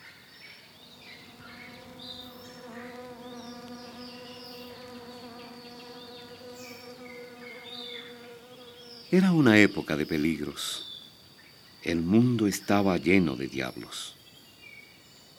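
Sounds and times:
faint bird chirps: 0:00.0 - 0:15.3
mosquitoes buzzing: 0:00.6 - 0:09.6
speech: 0:09.2 - 0:10.9, 0:11.9 - 0:14.2.

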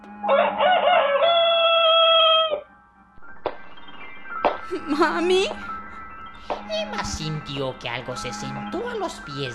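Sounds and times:
rooster crowing: 0:00.3 - 0:02.7
speech: 0:04.7 - 0:05.7, 0:06.7 - 0:09.5.

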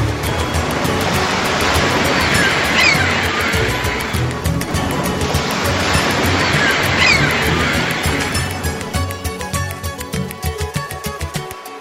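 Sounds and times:
sea waves crashing against rocks: 0:00.0 - 0:11.4.

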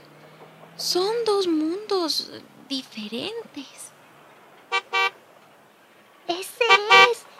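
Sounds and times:
speech: 0:00.8 - 0:03.8
car horn honking: 0:04.7 - 0:05.2, 0:06.6 - 0:07.3.

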